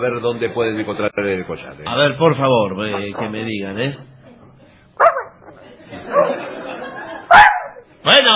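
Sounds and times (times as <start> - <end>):
speech: 0.0 - 4.1, 8.0 - 8.3
dog barking aboard a boat: 5.0 - 5.4, 7.3 - 7.8
laughter: 5.4 - 7.6.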